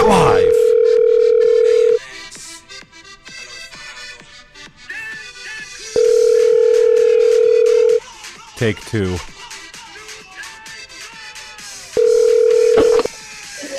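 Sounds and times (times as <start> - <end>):
buzzing phone-line ringing tone: 0.0 - 2.0, 5.9 - 8.0, 12.0 - 13.1
speech: 8.6 - 9.3.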